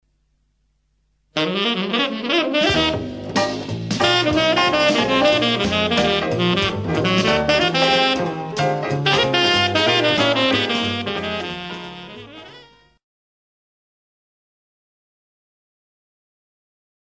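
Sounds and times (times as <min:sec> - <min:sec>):
saxophone playing jazz, rock and roll and pop: 0:01.3 - 0:13.0.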